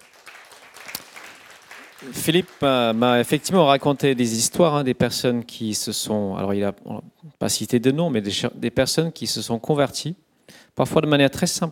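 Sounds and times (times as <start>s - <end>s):
audience applause: 0.0s - 4.2s
speech: 2.0s - 11.7s.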